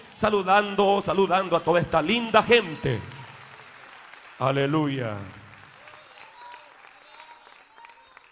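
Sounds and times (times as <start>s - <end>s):
church audience applauding: 0.0s - 8.3s
speech: 0.2s - 3.1s, 4.4s - 5.4s.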